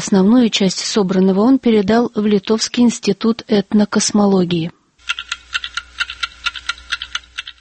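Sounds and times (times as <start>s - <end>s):
speech: 0.0s - 5.2s
antique wooden, metal and ceramic wall clocks ticking in a small apartment: 5.0s - 7.5s.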